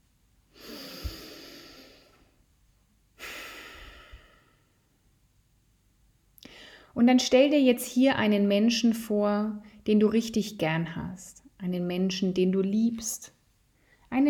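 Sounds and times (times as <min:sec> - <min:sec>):
deep breath in and out during a guided relaxation exercise: 0:00.5 - 0:02.4, 0:03.2 - 0:04.9, 0:06.4 - 0:07.0
speech: 0:07.0 - 0:13.4.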